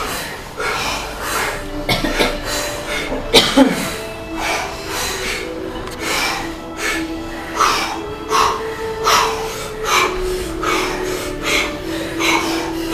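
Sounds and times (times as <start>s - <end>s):
forceful rhythmic deep breathing: 0.0s - 12.9s
soft sustained musical drone: 0.0s - 12.9s.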